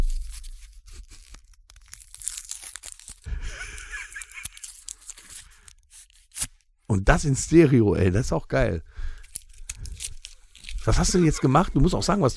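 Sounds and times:
plastic wrapping of a wooden chip fork being ripped open: 0.0 - 6.9, 9.1 - 11.1
laughter: 3.3 - 4.7, 10.8 - 12.3
speech: 6.9 - 8.9, 10.9 - 12.3.

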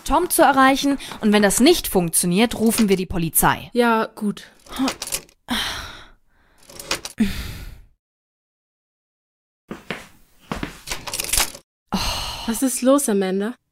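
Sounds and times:
speech: 0.0 - 5.8, 7.2 - 7.5, 12.5 - 13.6
key jiggling in a door lock: 4.6 - 5.4, 6.6 - 7.2, 10.9 - 11.6
heavy breathy sighs: 5.5 - 8.0, 11.9 - 12.6.

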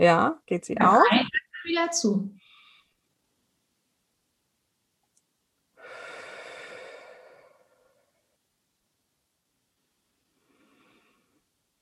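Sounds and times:
speech: 0.0 - 2.4
person breathing slowly during a breathing exercise: 5.8 - 8.3, 10.3 - 11.5.

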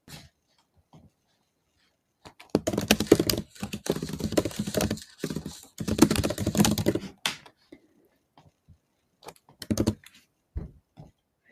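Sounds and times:
typing a message on a plastic computer keyboard: 2.4 - 7.1, 9.2 - 10.1.

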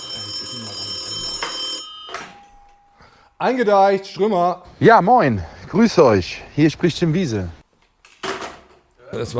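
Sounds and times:
telephone bell ringing: 0.0 - 3.2
speech: 3.4 - 7.6, 9.1 - 9.3.

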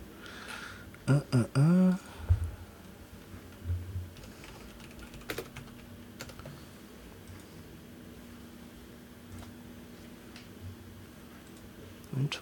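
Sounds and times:
person speaking: 1.0 - 2.6
computer keyboard keys clicking as a dice-roll command is typed: 4.2 - 6.5.

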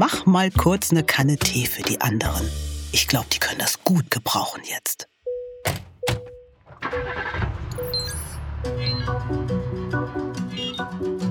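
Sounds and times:
speech: 0.0 - 6.2, 6.9 - 9.6
taxi engine starting and driving off: 6.6 - 10.1.

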